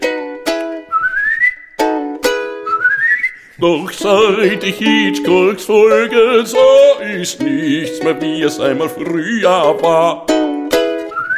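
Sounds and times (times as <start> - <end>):
human whistled melody: 0.0 - 5.3, 10.7 - 11.3
speech: 3.6 - 10.3.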